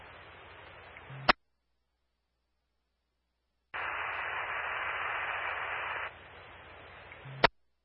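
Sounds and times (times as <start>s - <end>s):
broadband radio static hiss: 0.0s - 1.4s, 3.7s - 7.6s.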